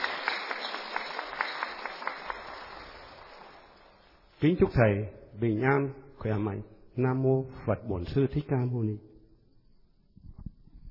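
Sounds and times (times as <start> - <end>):
Buddhist faithful applauding: 0.0 - 4.0
speech: 4.4 - 9.1.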